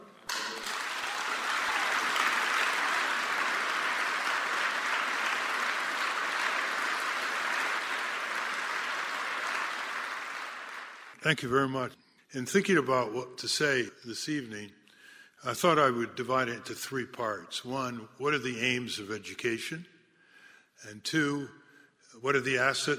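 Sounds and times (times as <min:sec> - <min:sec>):
sustained audience applause from a large crowd: 0:00.0 - 0:11.2
speech: 0:11.2 - 0:14.8, 0:15.4 - 0:19.9, 0:20.8 - 0:22.9.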